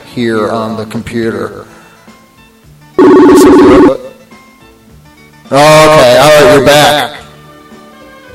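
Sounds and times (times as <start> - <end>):
speech: 0.2 - 1.7, 5.5 - 7.2
electronic incoming call ringtone on a phone: 3.0 - 4.2.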